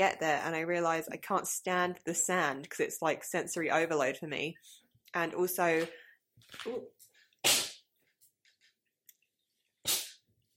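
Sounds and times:
speech: 0.0s - 7.6s
small sharp sneezes: 7.4s - 7.8s, 9.8s - 10.2s.

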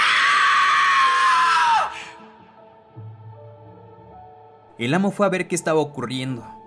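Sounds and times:
woman screaming at full force: 0.0s - 2.4s
speech: 4.8s - 6.6s.

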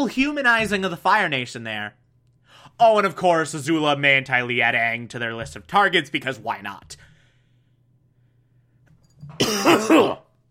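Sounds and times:
speech: 0.0s - 2.0s, 2.7s - 7.1s, 9.3s - 10.2s
faint breath: 7.0s - 8.9s
person coughing with something caught in the throat: 9.4s - 10.3s.

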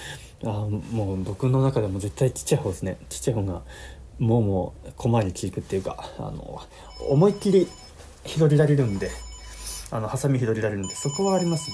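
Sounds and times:
speech: 0.4s - 9.3s, 9.9s - 11.7s
telephone ringing: 6.8s - 11.7s.

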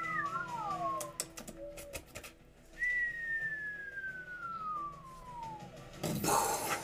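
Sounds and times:
whistle of a falling projectile: 0.0s - 1.9s, 2.8s - 5.8s.

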